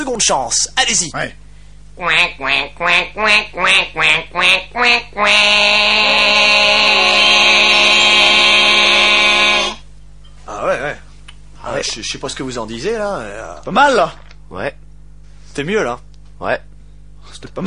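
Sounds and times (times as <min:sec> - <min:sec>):
speech: 0:00.0 - 0:01.4, 0:02.0 - 0:07.0, 0:11.6 - 0:14.8, 0:15.6 - 0:17.6
person imitating duck quacks: 0:02.0 - 0:09.8.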